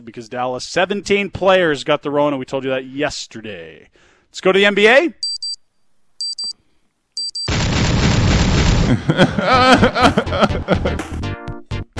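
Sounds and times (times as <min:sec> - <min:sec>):
speech: 0:00.0 - 0:05.2, 0:08.9 - 0:11.2
high electronic beeps of an NBA trade alarm sound effect: 0:05.2 - 0:05.6, 0:06.2 - 0:06.5, 0:07.2 - 0:07.5
booming whoosh: 0:07.5 - 0:09.0
laughter: 0:08.8 - 0:11.1.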